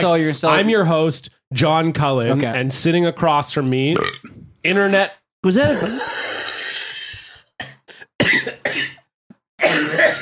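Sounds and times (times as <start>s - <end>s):
speech: 0.0s - 6.3s
person coughing in a hacking fit: 7.6s - 9.0s, 9.6s - 10.2s.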